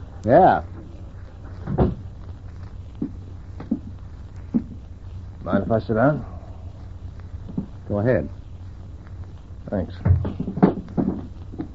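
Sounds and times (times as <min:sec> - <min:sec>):
speech: 0:00.2 - 0:00.7, 0:05.5 - 0:06.3, 0:07.9 - 0:08.4, 0:09.7 - 0:11.2
door swinging shut with a solid thump: 0:01.6 - 0:02.0.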